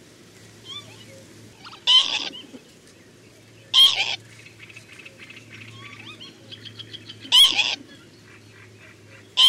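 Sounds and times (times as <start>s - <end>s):
softer chattering bird calls: 0.7s - 9.4s
sharp explosive bird alarm calls at an attacking predator: 1.6s - 2.5s, 3.7s - 9.4s.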